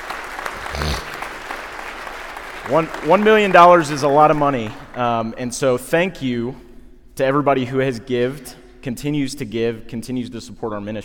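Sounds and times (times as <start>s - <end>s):
audience applause at a fundraising celebration for a church ministry: 0.0s - 5.0s
speech: 2.7s - 6.6s, 7.2s - 11.0s.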